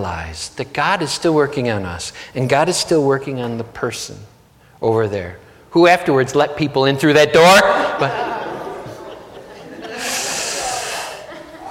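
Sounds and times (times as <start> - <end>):
speech: 0.0 - 8.4
laughter: 7.6 - 11.6
deep cleansing breath with a long hissing exhale: 9.9 - 11.3.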